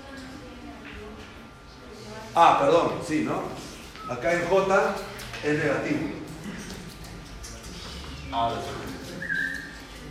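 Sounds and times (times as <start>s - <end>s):
murmuring room background: 0.0s - 10.0s
speech: 2.4s - 6.2s, 8.3s - 9.0s
person whistling: 9.1s - 9.8s.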